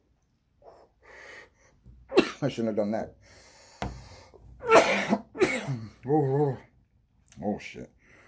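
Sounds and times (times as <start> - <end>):
coughing after smoking weed from a bowl: 2.1 - 2.6, 4.6 - 6.0
speech: 2.4 - 3.4, 6.0 - 6.7, 7.4 - 8.0.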